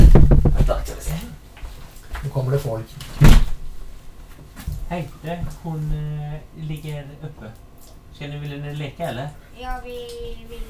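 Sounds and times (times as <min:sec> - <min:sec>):
firm knocks on a door: 0:00.0 - 0:00.8
speech: 0:04.9 - 0:10.6.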